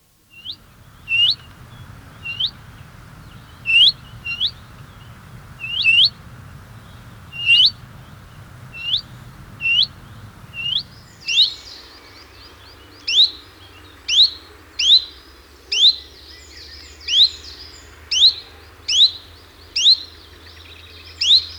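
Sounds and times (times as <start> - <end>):
willow warbler song: 0.0 - 21.5
low rumbling background: 0.3 - 11.3.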